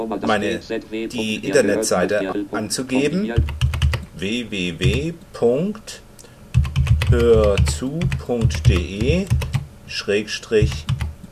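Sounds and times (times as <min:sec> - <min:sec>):
speech: 0:00.0 - 0:03.6, 0:04.2 - 0:06.0, 0:07.1 - 0:10.9
keystrokes on a computer keyboard pressing a shortcut: 0:03.4 - 0:04.1, 0:04.8 - 0:05.1, 0:06.5 - 0:09.7, 0:10.6 - 0:11.1.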